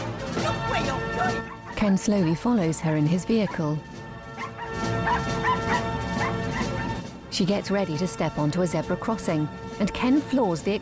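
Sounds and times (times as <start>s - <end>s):
speech: 0.8s - 4.0s, 7.4s - 10.8s
two dogs barking and yipping on a street walk: 1.2s - 2.4s, 3.3s - 7.1s.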